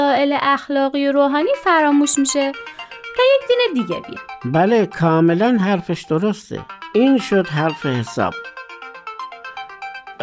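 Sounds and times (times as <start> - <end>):
speech: 0.2 - 8.6
phone ringtone with repeated electronic tones: 1.3 - 10.2.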